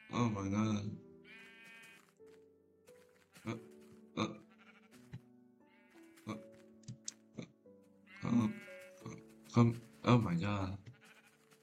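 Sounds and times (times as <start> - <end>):
sheep bleating: 0.0 - 0.5, 1.2 - 2.2, 3.2 - 6.6, 7.4 - 11.6
speech: 0.1 - 1.1, 9.6 - 10.8.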